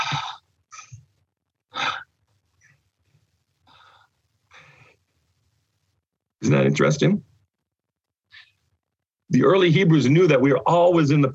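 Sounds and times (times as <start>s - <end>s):
person breathing deliberately in and out: 0.0s - 1.1s, 1.7s - 2.2s, 3.6s - 5.2s
speech: 6.5s - 7.3s, 9.3s - 11.3s.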